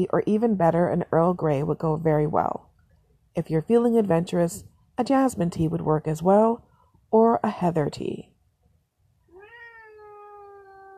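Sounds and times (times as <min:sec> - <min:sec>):
speech: 0:00.0 - 0:02.7, 0:03.4 - 0:08.3
cat meowing: 0:09.3 - 0:10.9.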